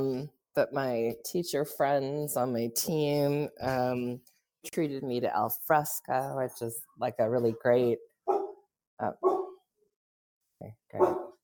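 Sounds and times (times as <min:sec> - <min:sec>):
speech: 0:00.0 - 0:08.1, 0:09.0 - 0:09.4, 0:10.6 - 0:11.2
sharp dog barks: 0:08.3 - 0:08.6, 0:09.2 - 0:09.6, 0:11.0 - 0:11.4.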